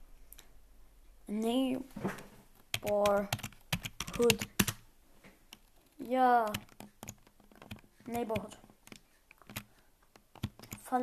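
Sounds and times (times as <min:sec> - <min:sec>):
speech: 0:01.3 - 0:03.5, 0:04.2 - 0:04.6, 0:06.1 - 0:06.7, 0:08.1 - 0:08.6
typing on a computer keyboard: 0:02.7 - 0:04.8, 0:05.5 - 0:10.9.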